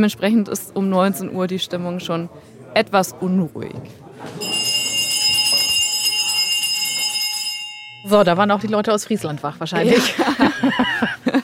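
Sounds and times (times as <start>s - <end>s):
speech: 0.0s - 4.6s, 8.0s - 11.4s
hand bell rung by a meeting chair: 4.4s - 8.3s
laughter: 9.8s - 11.4s.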